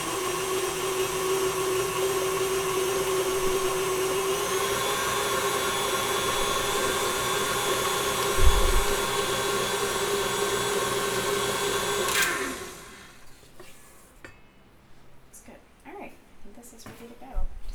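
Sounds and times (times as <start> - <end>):
electric mixer blending wet cake batter ingredients: 0.0 - 13.3.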